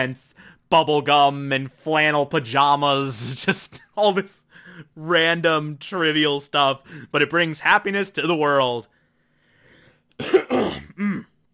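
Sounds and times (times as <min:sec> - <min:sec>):
speech: 0:00.0 - 0:08.9, 0:10.2 - 0:11.3
person clearing throat: 0:10.2 - 0:11.5.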